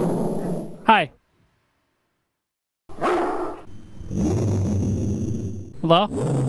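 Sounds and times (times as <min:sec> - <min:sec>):
speech: 0:00.9 - 0:01.2, 0:05.9 - 0:06.4
dog barking played from a soundboard during a phone call: 0:03.0 - 0:03.6
low rumbling noise: 0:03.6 - 0:06.4.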